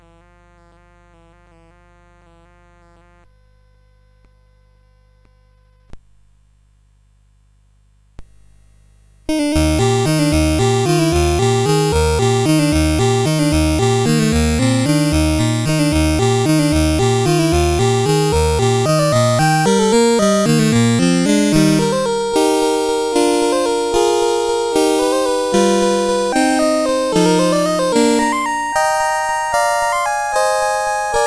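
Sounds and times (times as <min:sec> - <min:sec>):
waltz on CSG8580R5 chip: 0:09.3 - 0:31.2.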